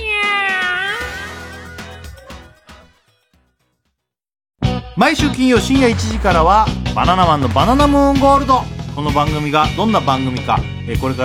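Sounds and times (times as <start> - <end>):
cat meowing: 0.0 - 1.5
speech: 5.0 - 11.2
low sustained rumbling tone: 5.8 - 8.7.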